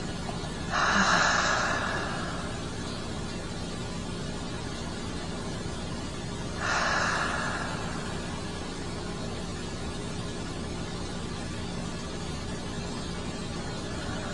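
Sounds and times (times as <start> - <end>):
steady hiss: 0.0 - 14.3
deep breath in and slow exhalation: 0.7 - 3.2, 6.5 - 9.2.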